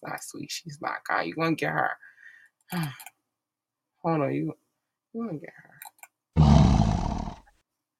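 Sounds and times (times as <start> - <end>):
speech: 0.1 - 2.1, 2.7 - 3.1, 4.0 - 4.6, 5.2 - 5.7
person imitating a big cat roar: 6.4 - 7.5.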